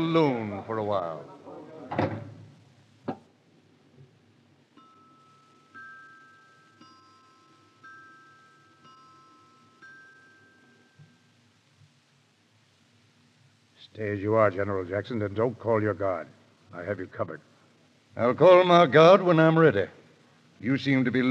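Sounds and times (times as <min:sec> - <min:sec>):
speech: 0:00.0 - 0:02.2, 0:14.0 - 0:17.5, 0:18.2 - 0:20.0, 0:20.6 - 0:21.2
door shutting with a heavy thud: 0:01.9 - 0:02.5
bright ringing chime tones: 0:04.8 - 0:11.4.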